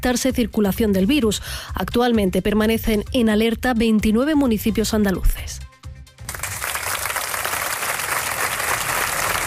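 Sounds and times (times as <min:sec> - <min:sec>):
speech: 0:00.0 - 0:05.7
large crowd applauding at the University of Granada in Spain: 0:06.2 - 0:09.4.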